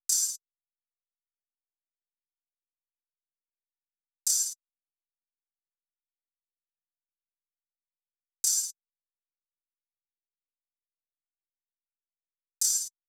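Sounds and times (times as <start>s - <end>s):
drum loop at 115 BPM with open hi-hat: 0.1s - 0.4s, 4.3s - 4.6s, 8.4s - 8.8s, 12.6s - 12.9s.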